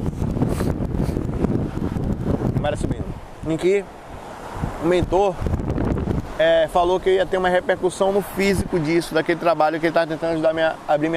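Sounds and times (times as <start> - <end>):
heavy wind buffeting the microphone: 0.0 - 9.2
water washing up near the speaker: 0.0 - 11.1
speech: 2.7 - 4.0, 4.8 - 5.5, 6.4 - 11.1.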